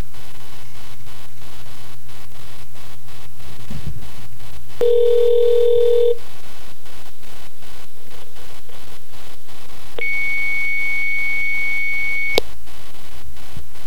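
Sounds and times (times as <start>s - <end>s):
outgoing call to a hotline ringing tones: 4.8s - 6.2s, 10.0s - 12.4s.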